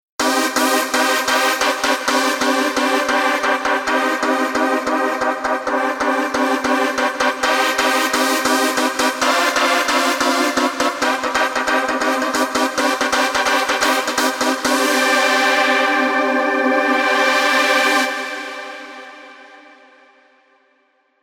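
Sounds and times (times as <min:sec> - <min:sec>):
Euro synth music: 0:00.2 - 0:19.4.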